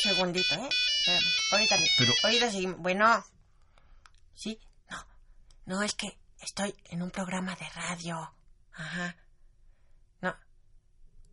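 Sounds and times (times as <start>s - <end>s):
cell phone ringtone with a steady high electronic tone: 0.0s - 2.7s
speech: 0.0s - 3.4s, 4.4s - 5.1s, 5.7s - 9.2s, 10.2s - 10.4s
person speaking loudly: 1.9s - 2.4s.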